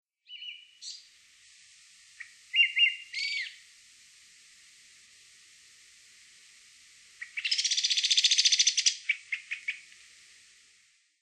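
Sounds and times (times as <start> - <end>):
Brown-headed Thrush calling: 2.2 - 3.6, 7.2 - 9.9.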